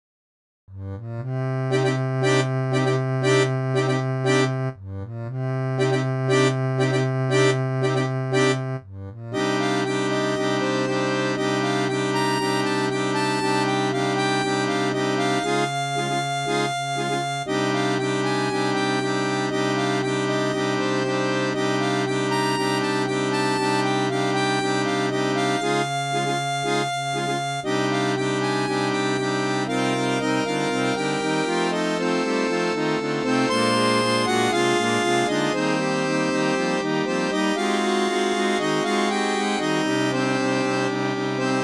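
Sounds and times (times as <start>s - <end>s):
synthesized harmonica audio: 0.8s - 41.6s.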